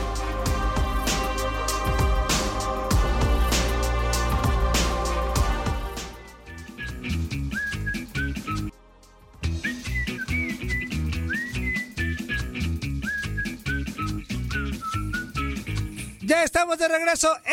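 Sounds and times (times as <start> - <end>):
loud steady rhythmic music backing: 0.0 - 16.3
person whistling a bright sliding melody: 6.0 - 8.7, 9.5 - 16.1
speech: 16.6 - 17.5.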